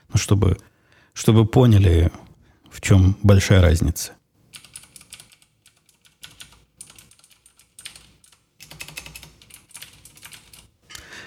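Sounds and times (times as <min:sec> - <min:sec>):
speech: 0:00.2 - 0:04.2
typing on a clicky keyboard: 0:04.5 - 0:10.7.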